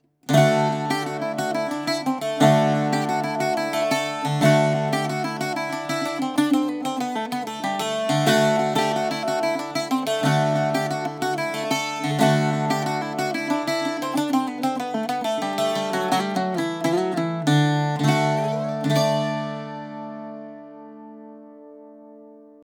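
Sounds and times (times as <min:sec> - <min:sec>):
bouzouki: 0:00.0 - 0:22.6.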